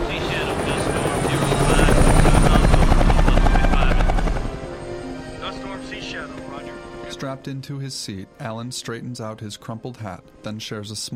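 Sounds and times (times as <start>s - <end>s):
helicopters flying away with rotors chopping: 0.0s - 6.7s
speech: 7.3s - 11.1s.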